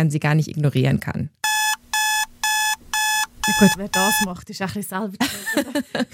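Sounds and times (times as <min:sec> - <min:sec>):
speech: 0:00.0 - 0:01.4, 0:03.5 - 0:06.1
electronic alarm clock ringing: 0:01.4 - 0:04.3
laughter: 0:05.2 - 0:06.1.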